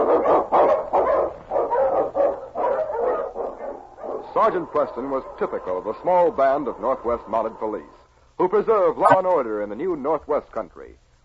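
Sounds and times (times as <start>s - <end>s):
husky lead sled dog barking excitedly: 0.0s - 4.2s
speech: 4.4s - 11.2s.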